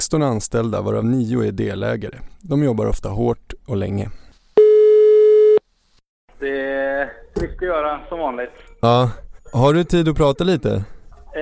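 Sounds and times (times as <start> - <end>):
speech: 0.0 - 4.2, 6.4 - 11.3
telephone ringback tone of an outgoing call: 4.6 - 5.6.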